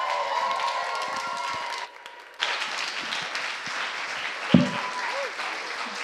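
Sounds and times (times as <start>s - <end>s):
large standing crowd applauding: 0.0s - 6.0s
sharp thump: 4.6s - 4.9s.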